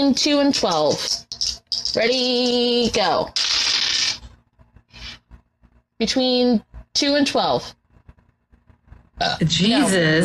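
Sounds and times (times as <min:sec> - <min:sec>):
speech: 0:00.0 - 0:03.5, 0:06.0 - 0:07.8, 0:09.2 - 0:10.2
two dice rattling in a cup or hand: 0:00.5 - 0:04.1
two dice clattering across a hard surface: 0:00.6 - 0:02.6.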